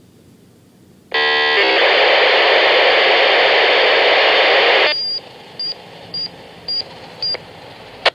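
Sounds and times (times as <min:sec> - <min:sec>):
ProVoice raw encrypted signal: 0:01.1 - 0:06.3.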